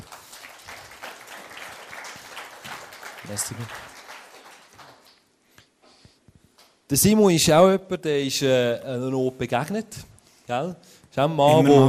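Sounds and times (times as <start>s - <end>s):
audience applause: 0.0s - 5.3s
speech: 3.3s - 3.9s, 6.9s - 11.8s.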